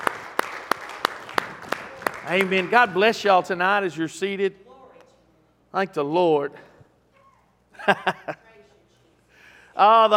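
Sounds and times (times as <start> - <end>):
audience clapping hands in worship: 0.0 - 3.1
speech: 2.3 - 4.6, 5.7 - 6.7, 7.9 - 8.4, 9.8 - 10.1
laughter: 7.8 - 8.6.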